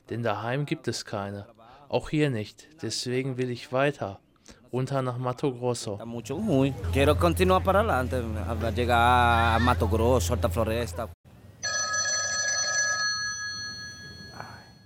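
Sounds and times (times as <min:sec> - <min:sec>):
speech: 0:00.1 - 0:11.2
telephone ringing with a trilling electronic bell: 0:11.6 - 0:14.8.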